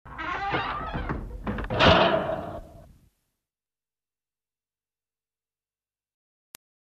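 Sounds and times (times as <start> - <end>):
door: 0.1 - 2.7.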